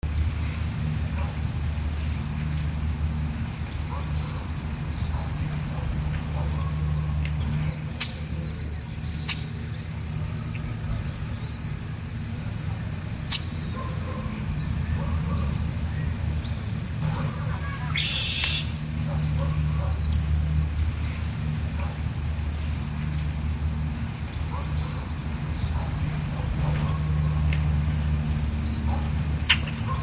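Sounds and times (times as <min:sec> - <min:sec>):
urban city birds: 0:00.1 - 0:30.0
dog barking: 0:05.1 - 0:06.8, 0:13.7 - 0:14.4, 0:15.0 - 0:15.5, 0:17.0 - 0:18.3, 0:19.0 - 0:20.0, 0:24.5 - 0:25.1, 0:25.7 - 0:27.4.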